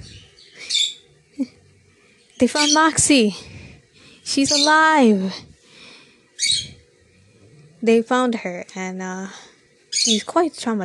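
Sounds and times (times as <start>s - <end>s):
pet bird chirping with high tweeting: 0.0s - 1.1s, 2.3s - 3.0s, 4.3s - 5.1s, 6.4s - 6.8s, 9.9s - 10.3s
speech: 2.4s - 3.6s, 4.3s - 5.5s, 7.8s - 10.8s.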